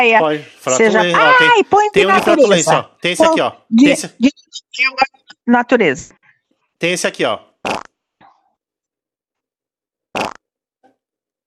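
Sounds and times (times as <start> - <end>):
speech: 0.0 - 6.2, 6.8 - 7.9
toad croaking sound effect: 7.6 - 7.9.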